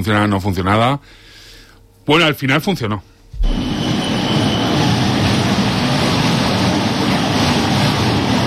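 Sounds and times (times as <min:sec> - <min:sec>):
speech: 0:00.0 - 0:01.3, 0:02.1 - 0:03.6
faint high squeal of tram: 0:03.4 - 0:05.0
early tram rolling along General Álava street in Vitoria-Gasteiz: 0:03.4 - 0:08.4.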